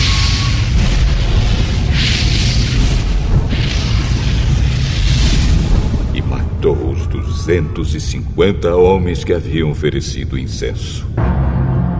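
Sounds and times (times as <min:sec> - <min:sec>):
roaring fire blast effect: 0:00.0 - 0:07.8
speech: 0:07.5 - 0:11.5.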